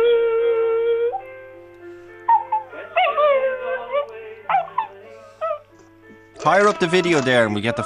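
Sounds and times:
dog howling, yipping and whining: 0:00.0 - 0:01.3, 0:02.3 - 0:05.6
speech: 0:06.4 - 0:07.8.

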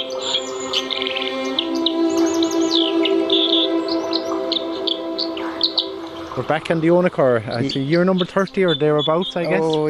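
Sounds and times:
river water rushing: 0:00.0 - 0:07.7
dipper singing by a river: 0:00.0 - 0:09.8
speech: 0:06.4 - 0:09.8.

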